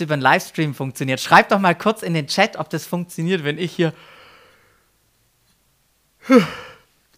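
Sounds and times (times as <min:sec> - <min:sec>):
speech: 0:00.0 - 0:04.2, 0:06.2 - 0:06.7
person yawning: 0:06.2 - 0:06.8.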